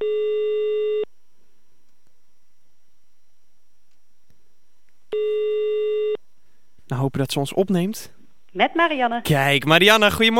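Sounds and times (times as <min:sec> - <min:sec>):
telephone ringback tone while a phone call is transferred: 0:00.0 - 0:01.1, 0:05.1 - 0:06.2
speech: 0:06.9 - 0:10.3.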